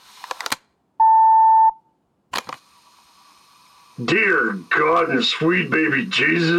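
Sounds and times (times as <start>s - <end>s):
answering machine beep: 1.0s - 1.8s
speech: 4.0s - 6.5s.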